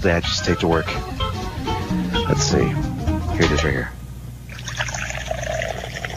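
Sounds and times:
speech: 0.0s - 1.1s, 1.9s - 4.0s
coffee pouring from a metal thermos: 4.5s - 6.1s.

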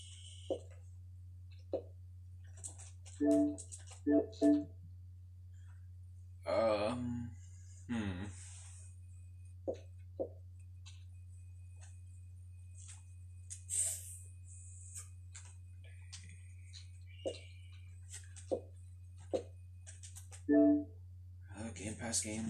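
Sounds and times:
constant low electrical hum: 0.0s - 22.4s
speech: 0.5s - 0.7s, 3.2s - 4.8s, 6.5s - 8.4s, 22.1s - 22.4s
keyboard clicks of a keyboard used with an Xbox: 2.5s - 4.6s, 19.3s - 20.6s
short vocal sounds like brief hums or grunts: 7.9s - 8.4s.

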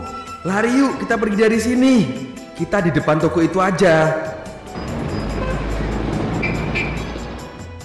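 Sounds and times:
speech: 0.4s - 4.3s
car driving by: 4.4s - 7.8s
faint street sounds: 4.4s - 7.8s.

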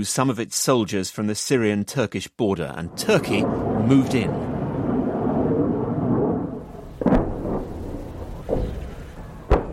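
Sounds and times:
speech: 0.0s - 4.5s
booming explosion blasts: 2.9s - 9.7s
low rumbling roar of military jets taking off: 3.1s - 9.3s
loud crack: 4.4s - 9.7s.

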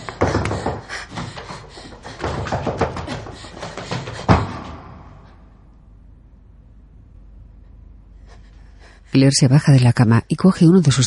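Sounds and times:
person standing on a cot banging on a ceiling: 0.0s - 5.3s
speech: 9.2s - 11.0s.

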